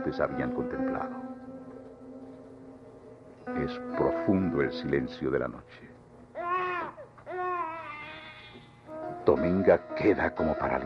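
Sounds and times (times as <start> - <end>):
speech: 0.1 - 1.3, 3.5 - 5.9, 9.3 - 10.8
faint infant crying: 6.3 - 9.0.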